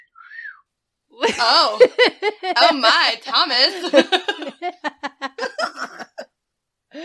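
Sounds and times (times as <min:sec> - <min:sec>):
person whistling an imitation of a train whistle: 0:00.0 - 0:00.7
laughter: 0:01.2 - 0:06.2
speech: 0:01.3 - 0:05.0.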